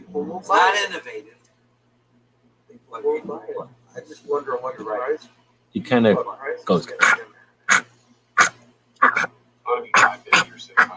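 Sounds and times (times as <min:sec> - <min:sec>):
faint low hum: 0:00.0 - 0:10.9
speech: 0:00.2 - 0:01.4, 0:02.9 - 0:07.4
dog giving husky cough-like barks: 0:07.0 - 0:09.3, 0:09.9 - 0:10.9.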